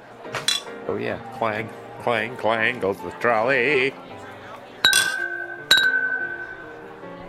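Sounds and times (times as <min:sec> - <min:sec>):
glasses clinking in a toast: 0:00.4 - 0:00.8, 0:04.8 - 0:07.0
speech: 0:00.9 - 0:04.2.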